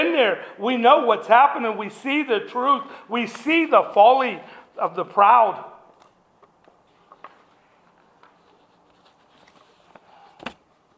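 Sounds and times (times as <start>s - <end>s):
speech: 0.2s - 5.7s
new paper being handled and shuffled: 6.8s - 10.6s.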